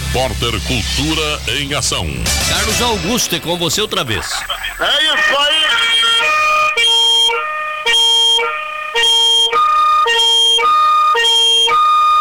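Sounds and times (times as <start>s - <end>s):
speech: 0.1s - 5.9s
Fire Department vehicle siren wailing at a fire station in Brazil: 4.8s - 12.1s.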